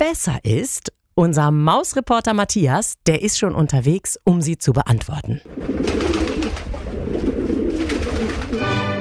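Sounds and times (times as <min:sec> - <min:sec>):
speech: 0:00.1 - 0:06.2
male pigeon cooing in courtship calls: 0:05.5 - 0:08.9.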